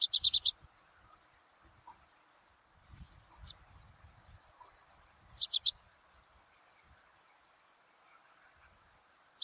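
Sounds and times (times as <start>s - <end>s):
Himalayan red-browed rosefinch high dry chirps: 0.0s - 1.4s, 5.0s - 5.9s, 8.7s - 9.4s.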